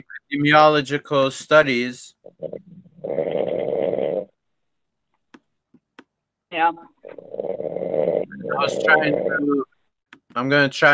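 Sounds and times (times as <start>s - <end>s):
speech: 0.3s - 2.2s, 6.6s - 7.2s, 8.5s - 9.6s, 10.3s - 10.9s
man snoring: 2.4s - 4.4s, 7.2s - 9.6s.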